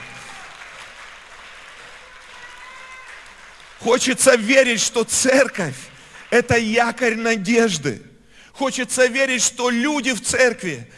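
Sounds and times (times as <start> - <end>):
audience applauding: 0.0 - 7.1
speech: 3.8 - 10.9.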